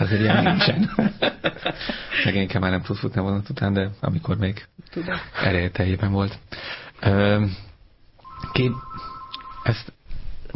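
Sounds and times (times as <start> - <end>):
speech: 0.0 - 7.7, 8.4 - 10.5
steady single-pitched electronic tone of an incoming call on a studio phone line: 8.2 - 9.8.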